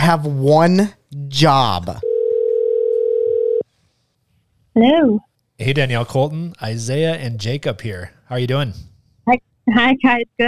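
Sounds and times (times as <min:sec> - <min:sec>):
speech: 0:00.0 - 0:02.1, 0:04.8 - 0:10.4
electronic ringing tone of an outgoing phone call: 0:02.0 - 0:03.6.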